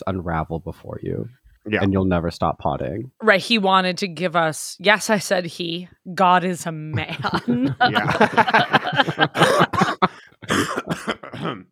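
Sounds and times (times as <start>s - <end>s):
speech: 0.0s - 11.7s
laughter: 6.9s - 11.4s
person in a dramatic coughing fit: 9.3s - 11.7s
throat-clearing rasps: 9.6s - 11.7s.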